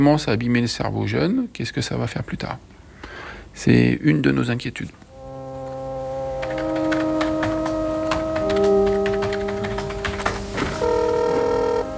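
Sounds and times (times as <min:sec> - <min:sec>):
speech: 0:00.0 - 0:02.7, 0:03.6 - 0:05.0
telephone line tones of a call for a remote medical consultation: 0:05.1 - 0:11.9.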